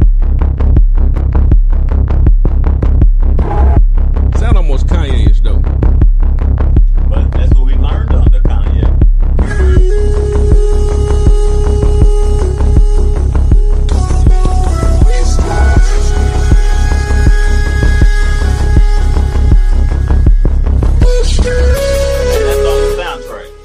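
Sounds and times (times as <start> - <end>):
movie theme soundtrack with throbbing bass pulse: 0.4 - 23.6.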